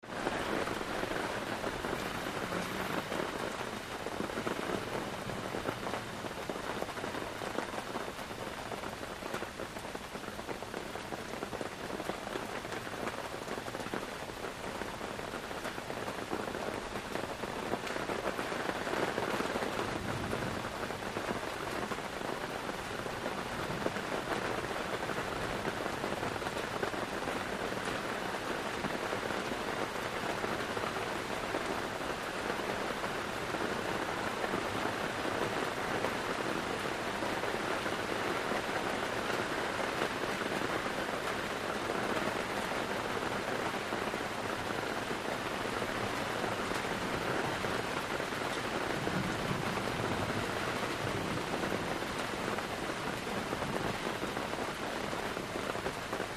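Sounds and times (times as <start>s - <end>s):
rain heard inside a tent: 0.0s - 56.3s.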